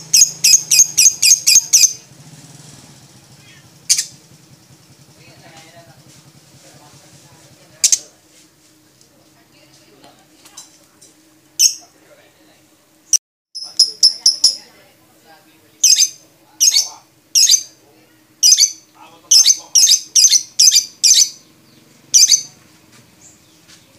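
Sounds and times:
lovebird giving shrill scratchy squeaks: 0.0 - 2.0, 3.4 - 4.2, 7.8 - 8.1, 11.6 - 11.9, 13.6 - 14.7, 15.8 - 17.8, 18.4 - 22.6.

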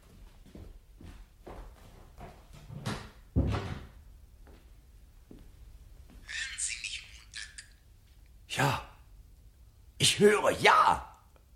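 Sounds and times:
door being closed: 2.8 - 4.0
speech: 8.6 - 8.9, 10.1 - 11.1.

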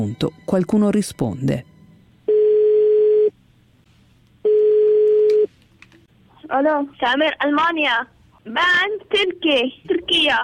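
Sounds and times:
speech: 0.0 - 1.7, 6.5 - 10.4
unanswered telephone ringing: 2.3 - 3.3, 4.4 - 5.5.

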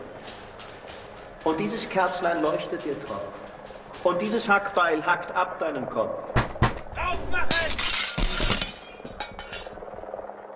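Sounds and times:
speech: 1.4 - 3.4, 4.0 - 6.3, 7.1 - 7.8
scattered tinkling and clinking glass debris: 7.5 - 9.8
window glass shattering as a ladder rams through a window: 7.5 - 9.8.

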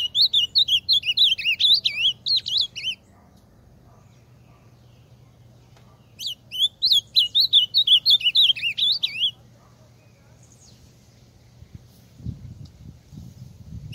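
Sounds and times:
ultramarine grosbeak singing in full force: 0.0 - 3.2, 6.1 - 9.4, 13.4 - 13.9.

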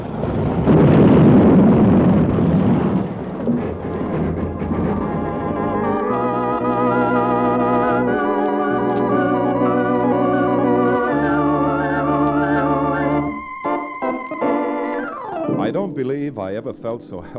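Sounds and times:
locomotive crashing into the back of a work train: 0.0 - 16.8
dramatic music: 3.1 - 16.7
speech: 16.5 - 17.3.

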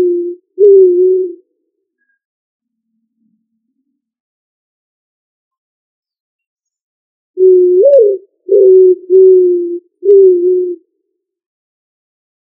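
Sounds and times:
pigeon cooing: 0.0 - 1.4, 7.4 - 10.8.

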